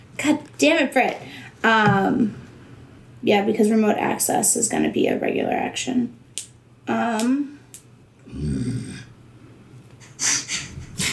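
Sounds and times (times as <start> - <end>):
speech: 0.2 - 2.4, 3.2 - 7.6
person growling in frustration: 8.2 - 9.1.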